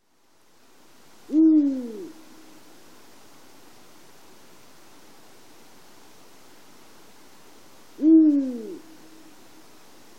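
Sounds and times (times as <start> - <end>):
quiet hiss: 0.0 - 10.1
Eurasian eagle-owl hooting in Dohoku: 1.3 - 2.6, 8.0 - 9.2.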